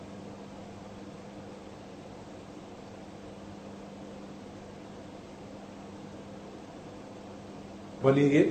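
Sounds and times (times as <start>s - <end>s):
electric fan humming: 0.0s - 8.4s
speech: 8.0s - 8.4s.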